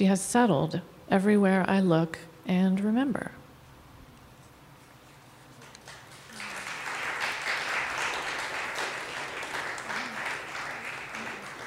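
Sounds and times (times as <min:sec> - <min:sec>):
speech: 0:00.0 - 0:03.4
crowd applause: 0:05.6 - 0:11.6.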